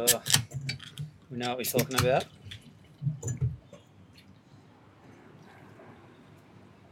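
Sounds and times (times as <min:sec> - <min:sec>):
speech: 0:00.0 - 0:00.4, 0:01.3 - 0:02.4
XPA beer being cracked open: 0:00.0 - 0:01.0
soft wet glugs of beer being poured: 0:00.6 - 0:06.2.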